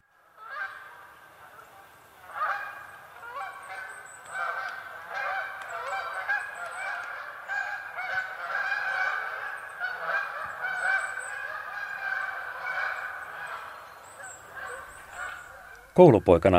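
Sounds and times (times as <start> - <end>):
flock of Canada geese honking: 0.0 - 16.3
speech: 16.0 - 16.5.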